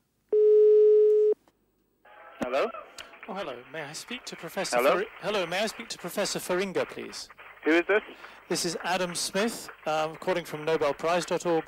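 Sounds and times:
telephone line tone at start of a phone call: 0:00.3 - 0:01.4
speech: 0:02.4 - 0:11.6.

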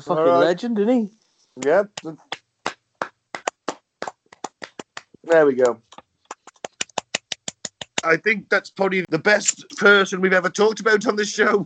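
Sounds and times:
speech: 0:00.0 - 0:02.3, 0:05.3 - 0:05.9, 0:08.0 - 0:11.6
one or two people clapping hands: 0:01.6 - 0:08.2.

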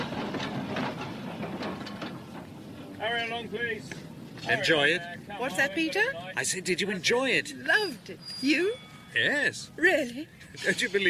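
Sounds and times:
tram wheel clacks over the rail joints: 0:00.0 - 0:05.0
tram rumbling past: 0:00.0 - 0:10.4
speech: 0:03.2 - 0:11.0.

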